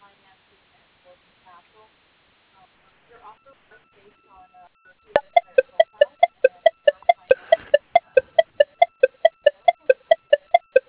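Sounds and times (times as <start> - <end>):
telephone keypad dialing tones: 5.2 - 10.8.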